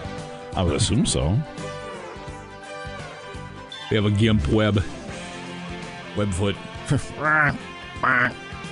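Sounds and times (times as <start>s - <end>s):
speech: 0.5s - 1.7s, 3.9s - 5.0s, 6.2s - 8.4s
injured lame duck quacking: 7.2s - 8.5s.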